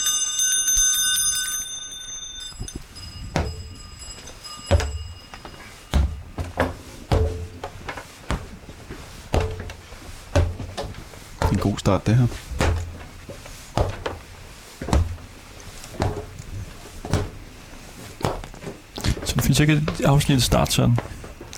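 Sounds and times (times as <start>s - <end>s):
horse harness sleigh bells jingling: 0.0s - 6.1s
hollow knocks and thuds: 3.3s - 3.8s, 4.7s - 5.2s, 5.9s - 8.7s, 9.3s - 11.8s, 12.5s - 14.2s, 14.8s - 15.3s, 15.9s - 16.4s, 17.0s - 17.4s
speech: 11.6s - 12.5s, 19.6s - 21.5s.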